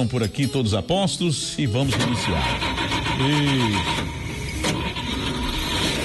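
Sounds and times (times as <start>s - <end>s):
speech: 0.0s - 4.2s
Chevrolet Chevette car engine starting: 1.8s - 6.0s.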